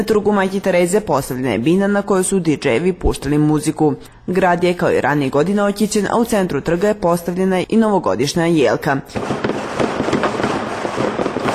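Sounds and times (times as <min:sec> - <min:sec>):
speech: 0:00.0 - 0:09.9
fireworks and firecrackers going off over a city square in Pristina on New Year's Eve: 0:09.1 - 0:11.5.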